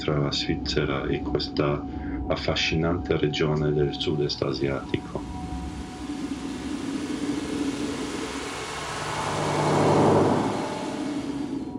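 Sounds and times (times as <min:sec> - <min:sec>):
speech: 0:00.0 - 0:05.2
bus engine drone while riding inside the moving bus: 0:03.8 - 0:11.7.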